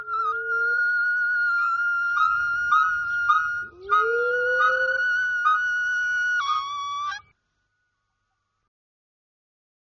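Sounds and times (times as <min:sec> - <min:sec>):
monkey whistled calls: 0:00.0 - 0:07.2.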